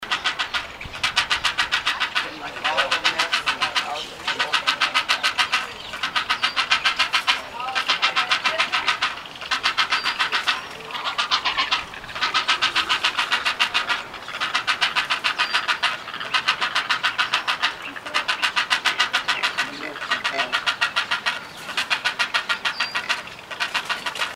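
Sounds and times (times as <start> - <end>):
Great Blue Heron Ardea herodias wading in large water: 0.1 - 24.3.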